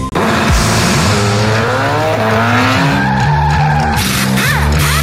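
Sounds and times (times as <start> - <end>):
car engine revving hard and accelerating: 0.2 - 5.0
car tires squealing: 1.0 - 5.0.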